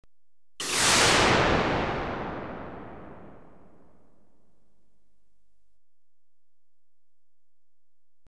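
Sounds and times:
electronically generated descending crash: 0.6s - 4.0s.

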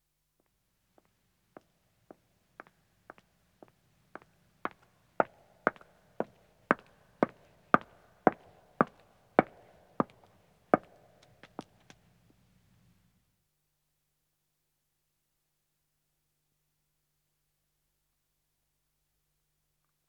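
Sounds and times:
woman's footsteps walking on stone: 0.4s - 12.4s.

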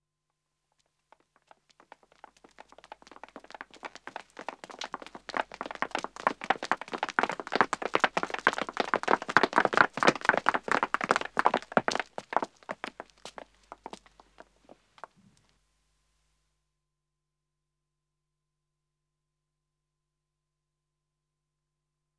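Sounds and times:
two men and two women running on pavement: 1.1s - 15.1s.

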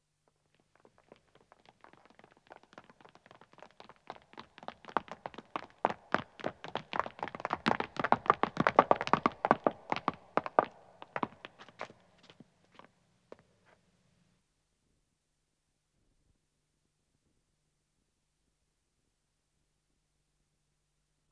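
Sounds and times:
footsteps running on stone: 0.8s - 12.9s.

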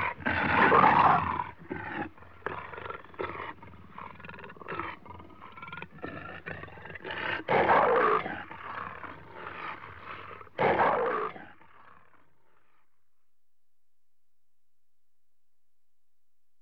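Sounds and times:
leopard in Africa growling with harsh rasping snarls: 0.0s - 12.2s.

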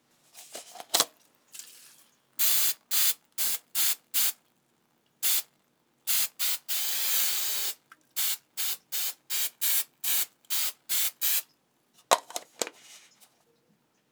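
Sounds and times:
hairspray spraying in a bathroom: 2.4s - 4.4s, 5.2s - 5.4s, 6.1s - 11.4s.

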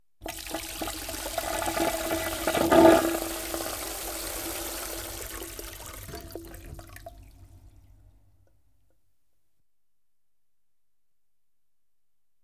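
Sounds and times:
toilet flushing on a diesel train: 0.2s - 8.3s.

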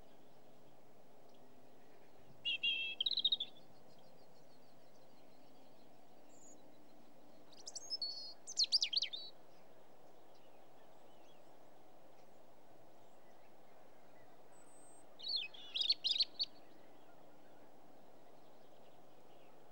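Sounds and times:
quiet steady background hiss: 0.0s - 19.7s
European robin song with high thin warbling phrases: 2.4s - 3.6s, 14.7s - 16.5s.

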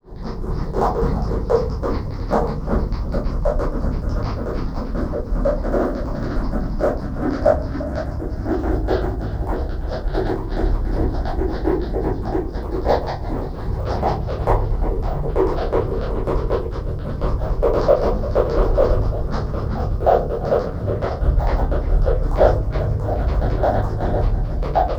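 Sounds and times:
dark scary ambience: 0.3s - 24.9s.

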